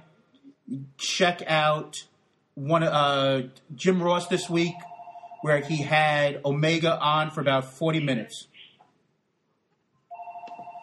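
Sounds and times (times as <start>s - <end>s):
speech: 0.7s - 8.5s
landline telephone ringing with electronic trill: 4.2s - 5.7s, 10.1s - 10.8s.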